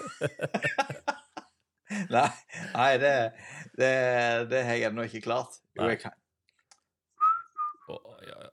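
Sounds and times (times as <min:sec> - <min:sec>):
laughter: 0:00.0 - 0:02.9
speech: 0:00.2 - 0:00.9, 0:02.1 - 0:06.2
person whistling two short notes: 0:07.2 - 0:07.8.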